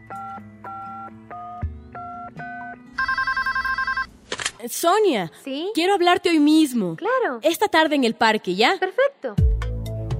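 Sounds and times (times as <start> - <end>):
touch-tone dialing beeps on a telephone: 0.1 - 4.1
rapid trilling electronic telephone ring: 2.2 - 4.1
speech: 4.6 - 9.5.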